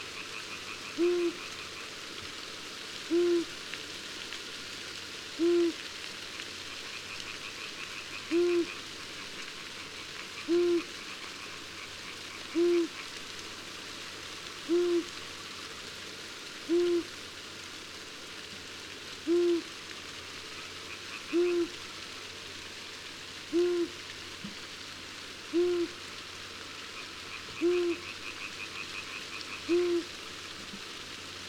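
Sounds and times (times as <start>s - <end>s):
long-eared owl in summer: 0.2s - 1.8s, 3.1s - 3.5s, 5.4s - 5.8s, 7.7s - 8.8s, 10.4s - 11.6s, 12.3s - 13.1s, 14.7s - 15.1s, 16.7s - 17.1s, 19.3s - 19.7s, 20.9s - 21.8s, 23.5s - 24.0s, 25.5s - 26.0s, 27.0s - 30.1s.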